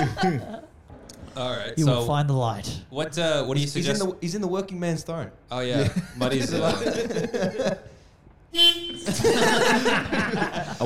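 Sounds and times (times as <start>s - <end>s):
speech: 0.0s - 0.6s, 1.4s - 7.9s, 8.5s - 10.8s
laughter: 0.0s - 0.7s, 5.8s - 7.9s, 9.0s - 10.8s
loud horn honk into the microphone: 8.5s - 9.3s.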